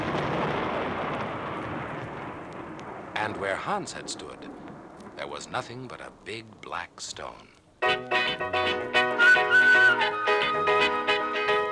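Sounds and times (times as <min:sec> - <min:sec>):
loud crash of thunder: 0:00.0 - 0:05.8
speech: 0:03.3 - 0:10.7.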